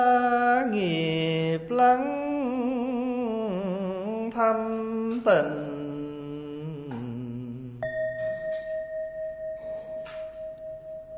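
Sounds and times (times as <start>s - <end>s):
low chanting voice: 0.0s - 8.4s
speech: 0.7s - 1.1s, 4.4s - 5.8s
bell struck and ringing with a pulsing hum: 7.8s - 11.1s.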